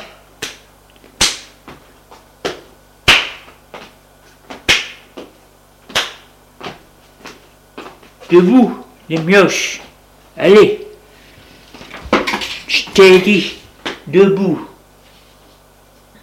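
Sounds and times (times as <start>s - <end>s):
sharp slaps given to children: 0.4s - 1.8s, 2.4s - 3.6s, 4.5s - 6.8s
speech: 8.3s - 9.8s, 10.4s - 10.8s, 13.0s - 14.7s.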